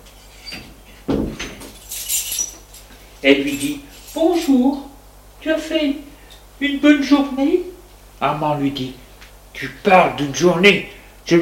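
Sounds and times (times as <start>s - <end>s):
front door clicking and thudding open: 0.6s - 1.9s
bright metallic rattle: 1.4s - 4.7s
keys jingling: 1.5s - 4.8s
speech: 3.2s - 9.0s, 9.6s - 11.4s.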